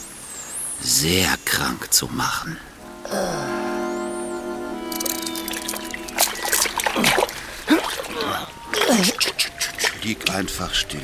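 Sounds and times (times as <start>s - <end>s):
speech: 0.8s - 3.6s, 8.2s - 11.0s
waves washing over a person lying in water: 2.8s - 10.5s.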